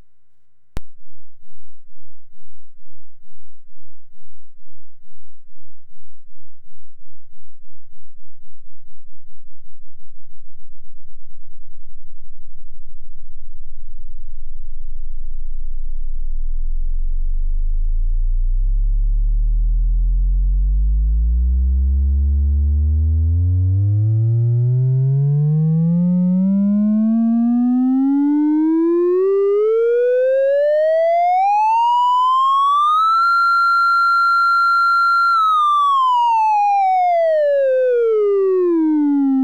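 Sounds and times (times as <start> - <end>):
sine wave sweep: 0.8 - 39.4.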